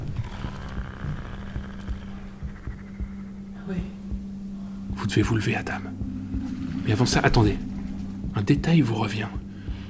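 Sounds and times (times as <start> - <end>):
low sickly creature growl with moaning wails: 0.0 - 3.6
soft rhythmic thuds: 0.0 - 9.8
speech: 3.7 - 4.0, 5.0 - 6.1, 6.9 - 7.7, 8.4 - 9.4.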